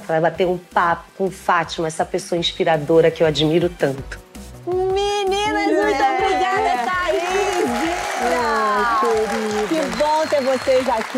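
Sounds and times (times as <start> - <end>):
speech: 0.1 - 4.3, 10.2 - 11.1
audience applause: 5.8 - 11.1.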